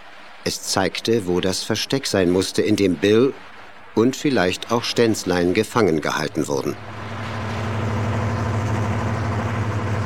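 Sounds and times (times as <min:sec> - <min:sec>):
speech: 0:00.5 - 0:07.0
motorboat engine running at night near an island bay: 0:02.8 - 0:10.0.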